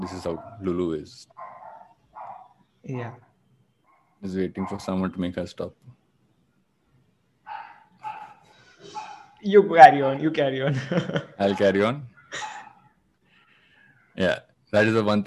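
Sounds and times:
laughter: 0.0 - 1.2, 9.5 - 12.6
speech: 0.0 - 1.4, 2.8 - 3.3, 4.2 - 6.0, 8.8 - 12.5, 14.2 - 15.2
female dog barking loudly: 0.1 - 0.6, 1.4 - 2.5, 7.5 - 9.4, 11.4 - 11.8, 12.4 - 12.8.

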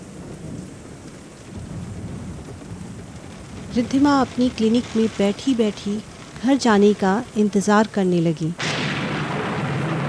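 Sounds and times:
deep rumble of thunder: 0.0 - 7.4, 8.6 - 10.0
torrential rain pouring down: 0.0 - 10.0
speech: 3.7 - 8.8.

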